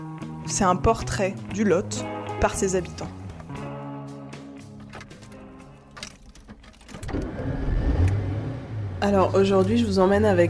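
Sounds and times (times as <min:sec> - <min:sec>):
speech: 0:00.5 - 0:03.2, 0:09.1 - 0:10.4
car engine humming: 0:04.7 - 0:10.3
clicks: 0:04.8 - 0:07.3
car door or window sounds: 0:04.8 - 0:07.7.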